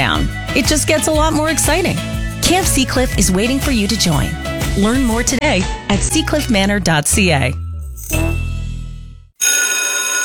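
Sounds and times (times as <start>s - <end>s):
speech: 0.1s - 8.2s
school bell ringing: 9.4s - 10.2s.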